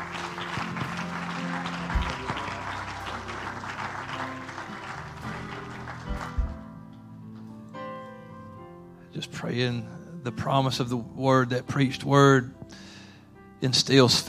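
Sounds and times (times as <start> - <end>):
audience clapping in dense applause: 0.0 - 7.4
speech: 9.2 - 12.8, 13.6 - 14.2.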